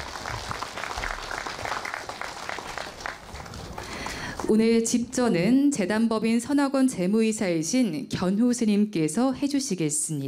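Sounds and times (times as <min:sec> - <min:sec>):
audience of monks and Buddhists applauding at groundbreaking ceremony: 0:00.0 - 0:04.6
speech: 0:04.5 - 0:10.2.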